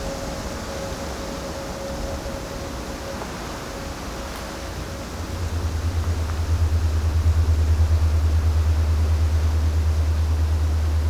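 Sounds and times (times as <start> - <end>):
faint steady tone: 0.0 - 11.0
louder pulsing deep hum: 0.0 - 11.0
dense low ground and structural rumble: 4.2 - 11.0.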